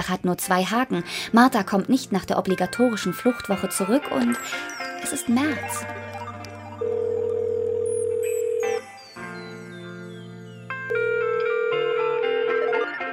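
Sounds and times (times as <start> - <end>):
speech: 0.0 - 6.0
higher electronic tones above the dial tone: 4.3 - 12.2
telephone dial tone as a call is placed: 5.8 - 8.9, 10.9 - 13.1.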